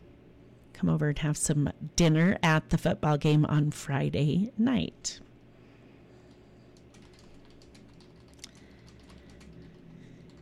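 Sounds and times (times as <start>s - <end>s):
steady low hum: 0.0s - 10.4s
speech: 0.8s - 5.3s
typing on a computer keyboard: 6.3s - 10.4s.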